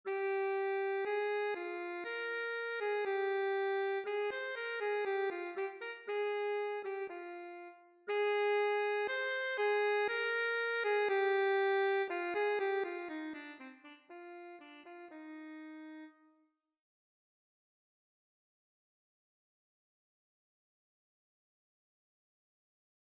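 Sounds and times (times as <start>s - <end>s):
alto saxophone playing an etude: 0.1s - 16.4s.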